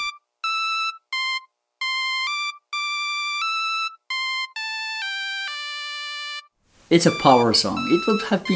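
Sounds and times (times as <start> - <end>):
cell phone ringtone melody: 0.0 - 8.5
speech: 6.9 - 8.5.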